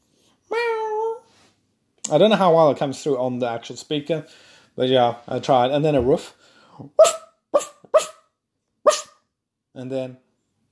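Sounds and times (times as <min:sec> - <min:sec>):
speech: 0:02.1 - 0:07.2, 0:09.8 - 0:10.3
person imitating a dog barking: 0:06.8 - 0:08.2, 0:08.9 - 0:09.2.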